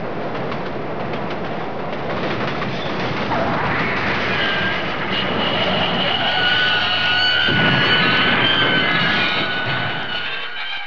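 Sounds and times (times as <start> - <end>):
subway crash: 0.1 - 10.8.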